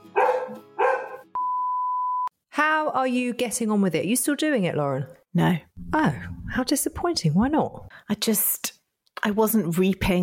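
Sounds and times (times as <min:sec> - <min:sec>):
dog barking: 0:00.2 - 0:01.3
speech: 0:02.6 - 0:10.2.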